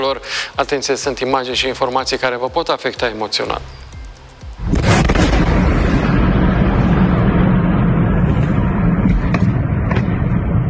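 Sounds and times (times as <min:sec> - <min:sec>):
speech: 0:00.1 - 0:03.9
sharp cracks and pops of secondary explosions: 0:04.5 - 0:10.6
sudden heavy blast at a struck ammunition depot: 0:04.6 - 0:10.6
sustained deep roaring rumble at a struck ammunition depot: 0:04.6 - 0:10.6.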